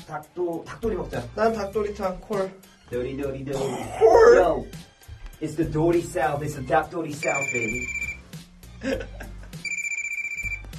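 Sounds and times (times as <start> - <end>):
speech: 0.1 - 8.0, 8.8 - 9.3
telephone bell ringing: 7.2 - 8.2, 9.6 - 10.7
laughter: 8.8 - 9.6.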